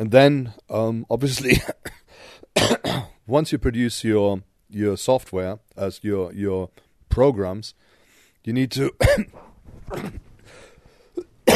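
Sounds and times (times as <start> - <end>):
speech: 0.0 - 2.0, 2.6 - 7.8, 8.4 - 10.3
person coughing while recovering from the flu: 1.5 - 3.2, 9.0 - 10.3, 11.2 - 11.5.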